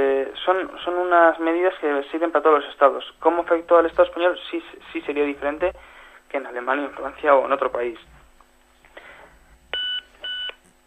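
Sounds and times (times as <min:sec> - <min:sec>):
speech: 0:00.0 - 0:08.1
electronic beeps on a phone call line: 0:09.8 - 0:10.6.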